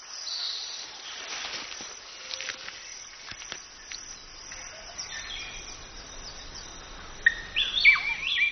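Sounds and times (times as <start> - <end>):
birds chirping and calling in a fruiting fig tree: 2.2 - 8.5.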